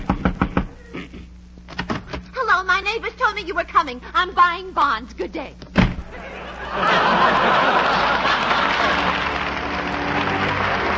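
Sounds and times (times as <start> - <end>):
knocking on the door of a house: 0.0 - 0.7
speech: 2.8 - 5.7, 6.7 - 8.1
laughter: 6.1 - 10.9.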